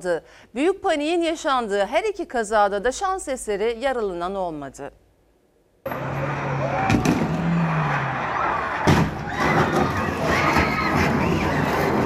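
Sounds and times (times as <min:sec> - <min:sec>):
speech: 0:00.0 - 0:05.0
traffic and crowd noise: 0:05.8 - 0:12.0
cars skidding on an ice-covered city street: 0:05.9 - 0:12.0.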